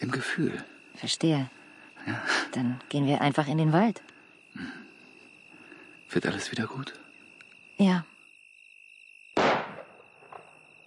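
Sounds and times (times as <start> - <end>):
insects chirping: 0.0 - 10.8
speech: 0.1 - 4.8, 6.1 - 7.0, 7.8 - 8.1
gunshot from a house: 9.4 - 10.6.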